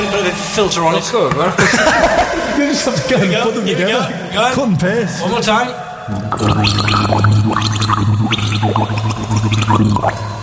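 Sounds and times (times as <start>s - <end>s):
speech: 0.3s - 10.4s
laughter: 1.5s - 4.1s
person gargling water while carrying a tune: 6.1s - 10.4s.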